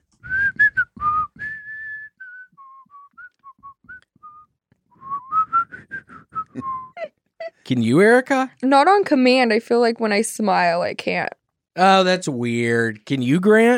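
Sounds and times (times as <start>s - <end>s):
person whistling a short wandering melody: 0.2s - 7.0s
speech: 7.7s - 13.7s.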